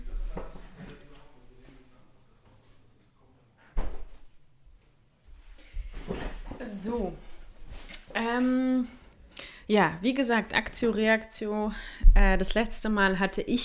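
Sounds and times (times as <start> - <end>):
door or drawer being shut: 3.8 - 4.2
speech: 6.8 - 7.3, 8.2 - 9.0, 9.7 - 13.6.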